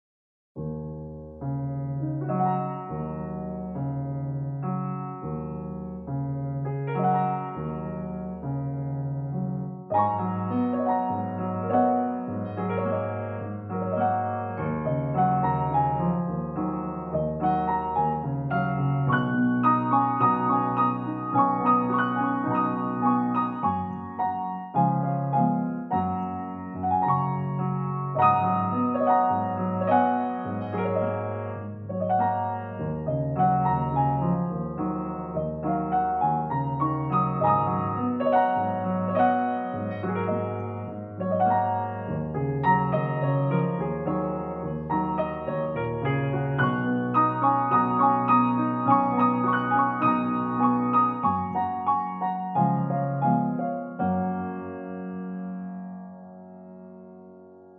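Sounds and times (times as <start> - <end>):
emotional eastern piano: 0.6 - 57.7.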